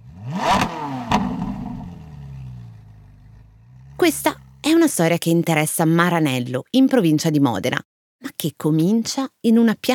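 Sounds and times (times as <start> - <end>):
Ferrari car engine revving: 0.0 - 4.9
speech: 4.0 - 9.9.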